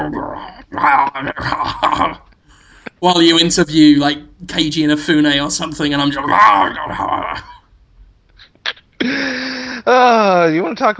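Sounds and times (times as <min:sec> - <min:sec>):
man's voice imitating a dog growling and gnawing: 0:00.0 - 0:02.3, 0:06.2 - 0:07.6
speech: 0:00.0 - 0:02.3, 0:03.0 - 0:07.6, 0:09.0 - 0:10.9.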